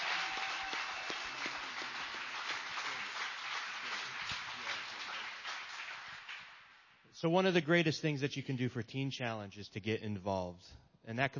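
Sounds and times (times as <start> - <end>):
church audience applauding a choir: 0.0 - 6.9
speech: 7.2 - 11.3.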